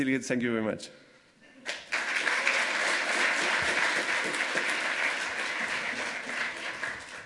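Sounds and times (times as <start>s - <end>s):
speech: 0.0s - 1.8s
crowd applause after a talk: 1.6s - 7.2s.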